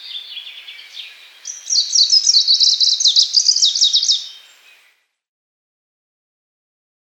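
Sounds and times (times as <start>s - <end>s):
greenish warbler song: 0.0s - 5.3s.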